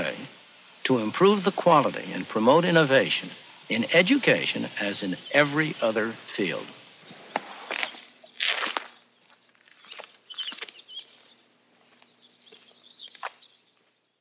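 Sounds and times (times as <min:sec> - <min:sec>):
birds chirping: 0:00.0 - 0:14.1
speech: 0:00.9 - 0:06.8
footsteps crunching through New Hampshire snow: 0:05.8 - 0:14.1.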